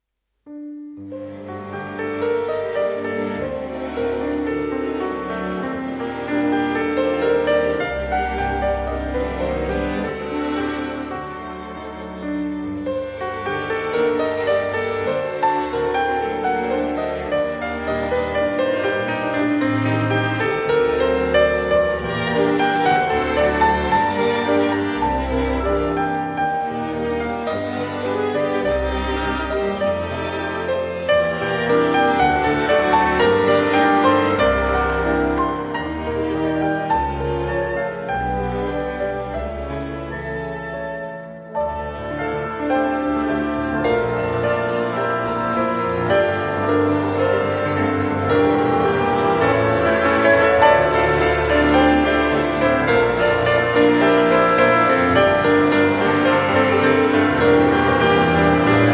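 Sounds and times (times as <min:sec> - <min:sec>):
classical pianist playing piano: 0:00.0 - 0:58.9.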